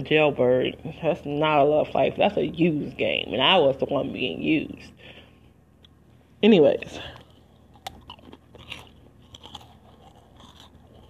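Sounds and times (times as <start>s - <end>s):
speech: 0.0s - 5.1s, 6.4s - 7.2s
person biting and chewing crunchy food while eating: 7.1s - 11.0s.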